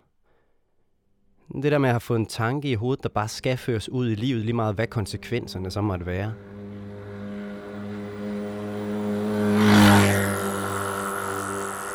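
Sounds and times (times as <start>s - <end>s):
speech: 1.5s - 6.5s
car driving fast on bypass road under viaduct by the Holbæk Motorway: 4.4s - 11.9s
car tire roar on bypass road: 4.4s - 11.9s.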